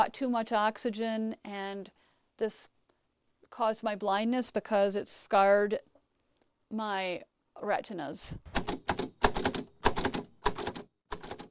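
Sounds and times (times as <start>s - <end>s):
speech: 0.0s - 2.8s, 3.5s - 5.9s, 6.7s - 8.6s
Braille typewriter typing: 8.5s - 11.4s.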